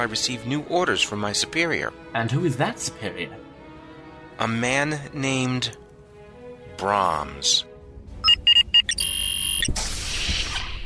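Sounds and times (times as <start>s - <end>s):
speech: 0.0s - 3.4s, 4.4s - 5.8s, 6.8s - 7.7s
electronic alarm beeping: 8.2s - 9.8s.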